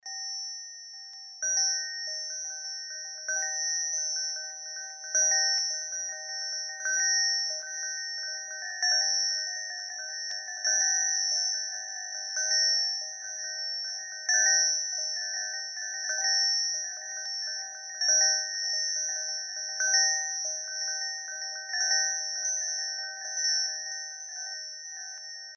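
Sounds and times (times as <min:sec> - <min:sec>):
chime: 0:00.0 - 0:25.5.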